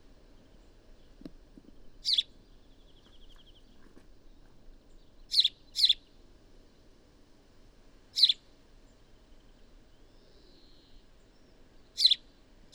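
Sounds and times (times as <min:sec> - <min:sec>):
faint background hum: 0:00.0 - 0:12.7
house sparrow Passer domesticus chirps: 0:02.0 - 0:03.6, 0:05.3 - 0:06.0, 0:08.2 - 0:08.4, 0:12.0 - 0:12.2.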